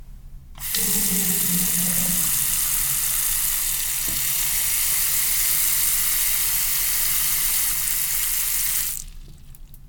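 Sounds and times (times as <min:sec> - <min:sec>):
bathroom water: 0:00.6 - 0:09.8.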